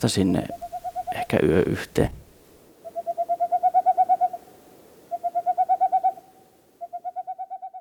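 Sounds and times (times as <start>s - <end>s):
speech: 0.0s - 2.2s
Eurasian pygmy owl giving piping whistled notes: 0.5s - 1.2s, 2.8s - 7.8s.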